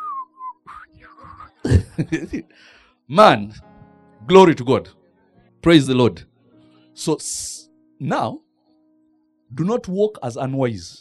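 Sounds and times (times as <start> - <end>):
person whistling a tune: 0.0 - 1.6
laughter: 1.6 - 2.5
speech: 2.0 - 5.0, 5.6 - 6.3, 7.0 - 8.4, 9.5 - 10.9.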